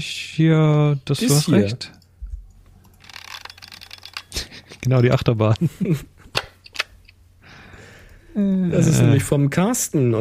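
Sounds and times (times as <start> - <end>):
speech: 0.0 - 2.0, 4.8 - 6.1, 8.4 - 10.2
EXA 1C 35mm single-lens reflex film camera shutter cocking rasp: 3.0 - 4.4
laughter: 4.3 - 6.1.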